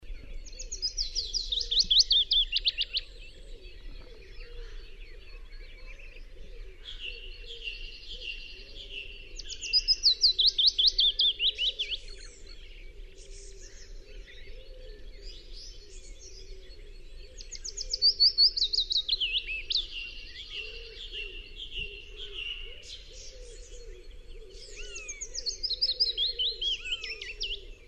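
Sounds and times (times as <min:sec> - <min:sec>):
willow warbler singing: 0:00.0 - 0:27.8.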